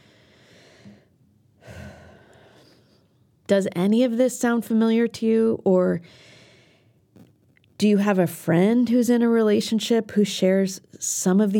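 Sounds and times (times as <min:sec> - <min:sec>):
deep breath: 0:00.0 - 0:03.1, 0:06.0 - 0:07.0
speech: 0:03.5 - 0:06.4, 0:07.8 - 0:11.5.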